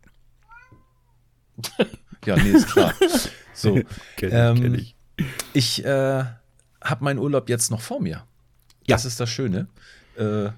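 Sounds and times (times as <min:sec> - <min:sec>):
cat meowing in complaint: 0:00.4 - 0:01.2
laughter: 0:01.6 - 0:03.9
speech: 0:01.6 - 0:10.5.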